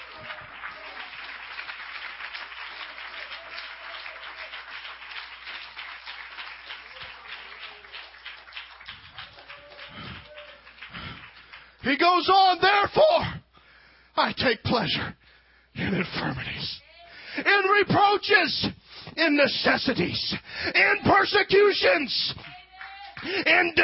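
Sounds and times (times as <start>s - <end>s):
large crowd at a sermon clapping vigorously: 0.0s - 12.9s, 22.3s - 23.8s
speech: 11.8s - 13.4s, 14.2s - 15.2s, 15.8s - 16.8s, 17.4s - 22.4s, 23.2s - 23.8s.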